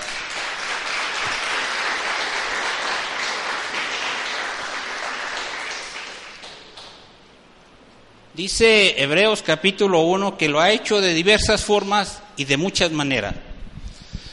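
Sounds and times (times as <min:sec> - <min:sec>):
congregation applauding loudly: 0:00.0 - 0:07.2
speech: 0:08.4 - 0:13.5.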